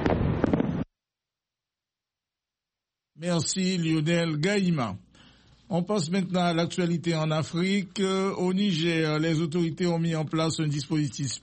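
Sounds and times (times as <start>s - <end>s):
fireworks exploding in the sky: 0.0s - 0.9s
speech: 3.2s - 5.0s, 5.7s - 11.4s.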